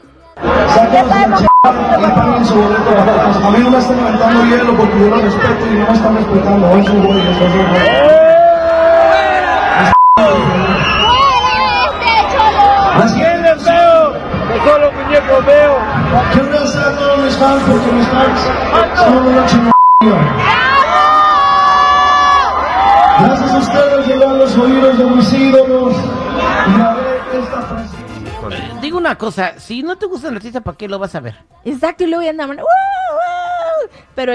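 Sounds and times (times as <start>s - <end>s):
large concert crowd shouting and booing: 0.3s - 28.9s
speech: 0.8s - 8.3s, 17.3s - 19.7s, 28.5s - 33.2s, 34.2s - 34.3s
short electronic bleeps: 1.4s - 1.8s, 9.9s - 10.4s, 19.7s - 20.1s.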